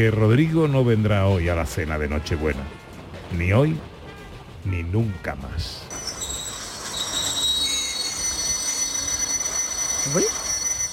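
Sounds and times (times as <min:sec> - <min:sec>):
speech: 0:00.0 - 0:03.9, 0:04.6 - 0:06.0, 0:10.0 - 0:10.4
steady rushing rumble of a slowing train: 0:00.0 - 0:10.9
train wheels squealing against the rails as a train slows in snowy country: 0:05.9 - 0:10.9.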